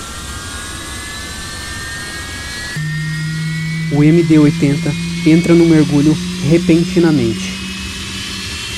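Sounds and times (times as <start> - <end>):
jet-engine roar inside an MD-80 airliner: 0.0 - 8.7
airliner horizontal stabilizer actuator humming: 2.7 - 8.7
speech: 3.9 - 7.5.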